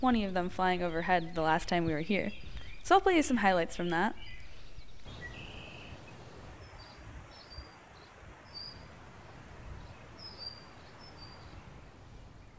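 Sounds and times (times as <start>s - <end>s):
speech: 0.0s - 4.4s
wild birds chirping and trilling: 0.1s - 11.8s
steady outdoor hiss: 4.2s - 12.5s.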